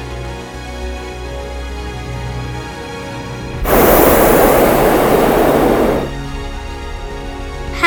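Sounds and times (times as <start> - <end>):
hot air balloon burner firing: 3.6 - 6.4.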